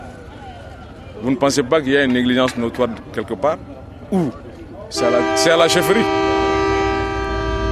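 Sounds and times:
speech: 1.2s - 6.3s
low rumble of a departing freight train moving: 4.5s - 7.6s
freight train horn blaring with a chord-like tone: 4.9s - 7.6s.

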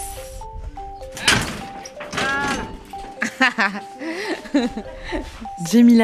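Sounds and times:
house front door opening with a solid thunk: 1.0s - 3.2s
laughter: 3.2s - 5.4s
speech: 3.6s - 6.0s.

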